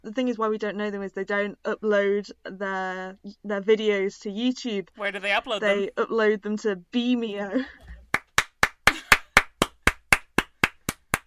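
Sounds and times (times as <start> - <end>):
speech: 0.0 - 7.8
hands clapping: 7.9 - 11.2.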